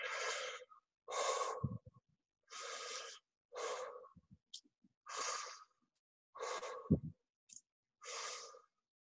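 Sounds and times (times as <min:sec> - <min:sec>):
forceful breathwork breaths: 0:00.0 - 0:04.4, 0:05.0 - 0:05.8, 0:06.4 - 0:07.2.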